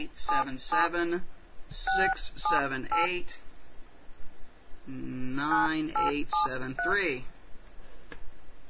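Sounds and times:
man talking: 0.0 - 3.4, 4.9 - 7.3
telephone keypad tones dialing a toll-free number: 6.0 - 7.0.

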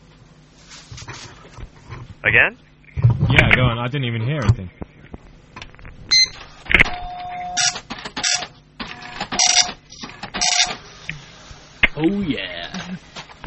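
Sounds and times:
speech: 2.2 - 2.7, 3.6 - 4.8, 12.0 - 13.0
dot matrix printer printing: 7.4 - 11.0.

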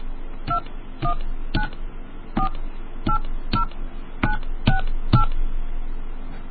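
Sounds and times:
low hum: 0.0 - 6.4
phone touch-tone keypad beeps entering a calling card PIN: 2.4 - 5.4.

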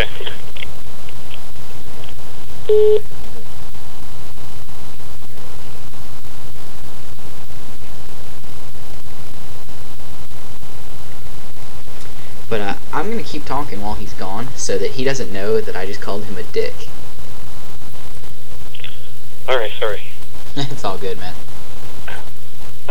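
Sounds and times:
steady low hum: 0.0 - 22.9
telephone giving a brief electronic ring: 2.7 - 3.0
speech: 13.3 - 17.0, 19.5 - 21.4.

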